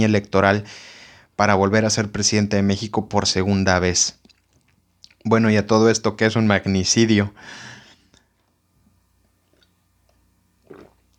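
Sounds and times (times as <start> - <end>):
speech: 0.0 - 4.2, 5.2 - 7.7
soft swallow: 10.6 - 11.0
person slurping coffee: 10.6 - 11.1.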